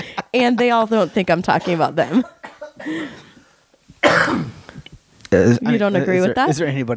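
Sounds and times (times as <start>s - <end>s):
laughter: 0.0s - 3.6s
speech: 0.4s - 3.2s, 4.0s - 4.6s, 5.3s - 6.9s
person coughing hard: 1.0s - 3.4s, 4.0s - 5.6s.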